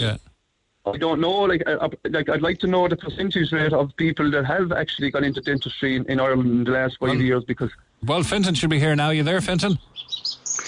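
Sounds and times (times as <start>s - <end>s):
speech: 0.0s - 0.2s, 0.8s - 10.3s
birds chirping faintly: 2.3s - 7.7s, 8.8s - 10.6s.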